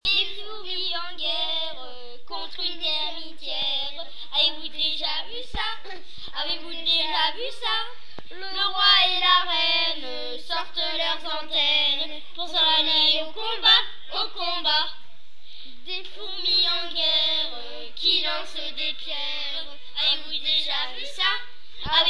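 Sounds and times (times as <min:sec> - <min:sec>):
group singing: 0:00.1 - 0:15.0, 0:15.9 - 0:22.0.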